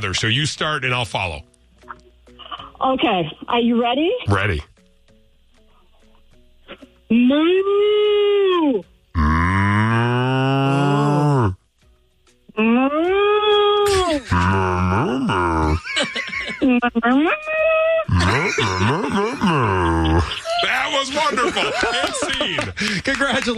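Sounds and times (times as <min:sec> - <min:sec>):
speech: 0:00.0 - 0:01.5, 0:02.8 - 0:04.7, 0:07.1 - 0:08.9, 0:12.6 - 0:13.6, 0:14.2 - 0:23.5
two people imitating cow moos: 0:07.1 - 0:11.6, 0:12.6 - 0:15.9, 0:18.0 - 0:20.4
laughter: 0:13.9 - 0:23.5.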